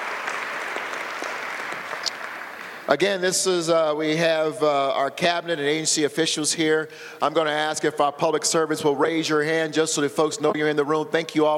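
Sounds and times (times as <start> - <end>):
crowd applauding first responders at a public government event: 0.0 - 3.0
speech: 2.9 - 11.5.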